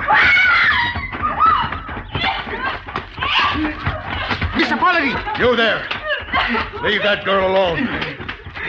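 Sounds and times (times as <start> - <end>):
woman screaming: 0.0 - 2.4
laughter: 1.9 - 8.6
speech: 5.4 - 8.6.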